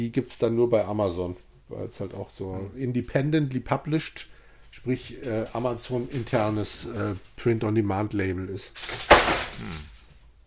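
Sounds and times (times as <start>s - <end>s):
speech: 0.0s - 9.9s
binders knocked over by a dog: 8.8s - 10.1s.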